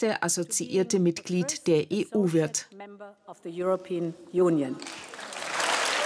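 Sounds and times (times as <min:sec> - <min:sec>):
speech: 0:00.0 - 0:05.1
thunderous applause and standing ovation from a large crowd: 0:05.0 - 0:06.0.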